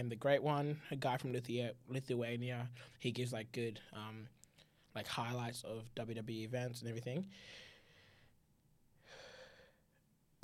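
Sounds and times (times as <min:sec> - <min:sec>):
speech: 0:00.0 - 0:04.4, 0:05.0 - 0:07.7
person taking a quick soft breath: 0:07.3 - 0:08.4, 0:09.0 - 0:10.0.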